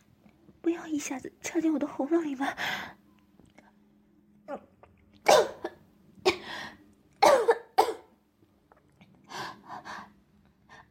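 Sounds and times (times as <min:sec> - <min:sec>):
speech: 0:00.7 - 0:03.0
person coughing after choking on water: 0:07.2 - 0:08.1.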